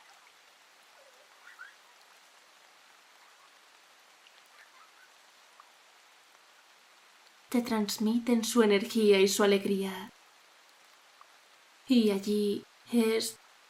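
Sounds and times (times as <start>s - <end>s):
sudden rain shower in a constant soft hiss: 0.0s - 13.6s
speech: 7.5s - 10.1s, 11.9s - 13.4s.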